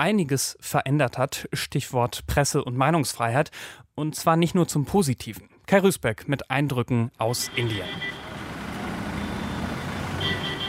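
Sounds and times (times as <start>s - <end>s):
speech: 0.0s - 8.2s
traffic drone in the city of Pune India: 7.3s - 10.6s
bus engine rumble crawling through a traffic jam in Pune India: 7.5s - 10.6s.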